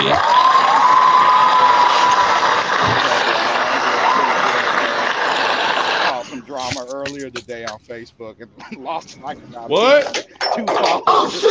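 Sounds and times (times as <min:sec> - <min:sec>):
speech: 0:00.0 - 0:00.3, 0:06.6 - 0:11.5
crowd applause and cheering: 0:00.0 - 0:06.6
laughter: 0:00.0 - 0:11.5.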